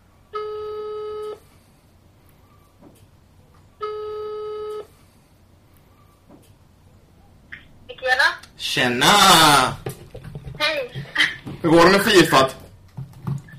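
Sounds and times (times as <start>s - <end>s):
ringback tone of an outgoing phone call: 0.4s - 1.4s, 3.8s - 4.9s
speech: 8.6s - 9.8s, 11.6s - 12.6s.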